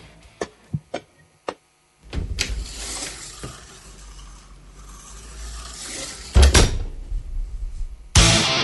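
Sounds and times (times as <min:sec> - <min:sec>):
door creaking and clunking open: 0:02.0 - 0:04.4, 0:05.3 - 0:08.2
heavy thud: 0:02.1 - 0:02.5, 0:06.3 - 0:08.3
low rumbling room ambience: 0:02.1 - 0:08.4.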